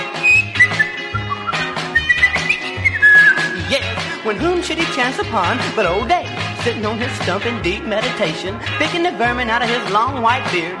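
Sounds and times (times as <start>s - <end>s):
person whistling a cheerful little tune: 0.0s - 4.0s
bouncy instrumental backing with a steady bass line: 0.0s - 10.7s
speech: 4.3s - 10.7s.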